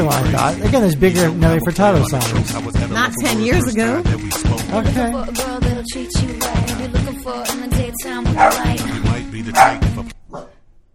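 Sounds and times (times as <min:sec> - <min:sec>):
speech: 0:00.0 - 0:10.5
dogs barking: 0:08.3 - 0:10.6.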